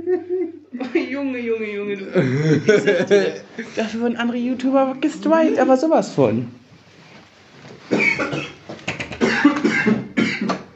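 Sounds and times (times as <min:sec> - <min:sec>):
speech: 0:01.2 - 0:06.6
laughter: 0:02.2 - 0:03.9
harsh rasping coughs: 0:07.9 - 0:10.7.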